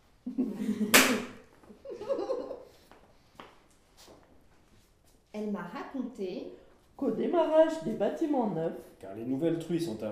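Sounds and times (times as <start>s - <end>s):
people chuckling: 0.2s - 2.9s
sharp loud slap: 0.9s - 1.4s
speech: 5.4s - 10.1s.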